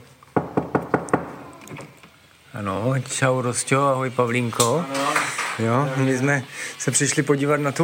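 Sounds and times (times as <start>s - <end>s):
faint room noise: 0.0s - 7.8s
quick knocks on a wooden door: 0.4s - 1.4s
speech: 2.6s - 7.8s.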